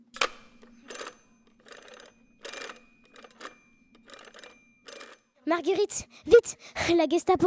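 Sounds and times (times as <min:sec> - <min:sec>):
old metallic telephone bell ringing for an internal call: 0:00.8 - 0:05.4
speech: 0:05.5 - 0:07.4.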